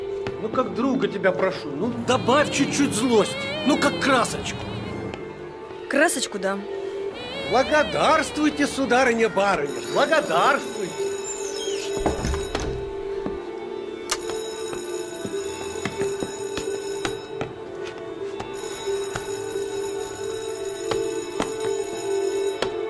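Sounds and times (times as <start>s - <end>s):
speech: 0.4s - 4.8s, 5.9s - 6.8s, 7.5s - 10.7s
theatre third bell ringing electrically: 9.7s - 13.1s, 14.1s - 17.4s, 18.6s - 22.8s.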